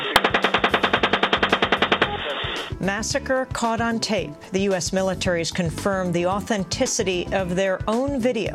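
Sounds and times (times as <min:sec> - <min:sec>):
machine gun fire from U.S. forces in Iraq: 0:00.0 - 0:02.7
speech: 0:02.8 - 0:08.5.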